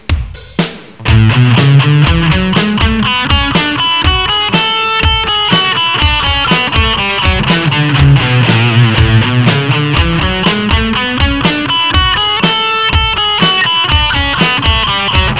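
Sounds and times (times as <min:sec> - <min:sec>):
A major scale played: 0:01.0 - 0:15.3.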